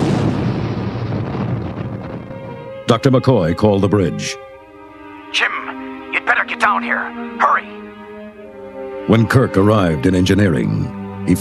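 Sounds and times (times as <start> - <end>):
roaring explosion sound effect: 0.0 - 2.7
speech: 2.9 - 4.4, 5.3 - 5.6, 6.7 - 7.7, 9.1 - 11.3.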